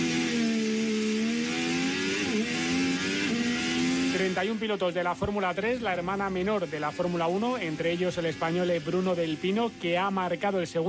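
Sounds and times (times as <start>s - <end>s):
Formula 3 race car engines roaring: 0.0s - 10.8s
speech: 4.2s - 10.8s.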